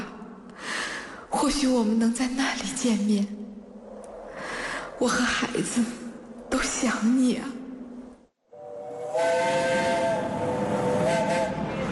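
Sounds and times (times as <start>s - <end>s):
speech: 1.4s - 3.4s, 5.0s - 6.0s, 6.6s - 7.6s
steam train whistle: 8.5s - 11.9s.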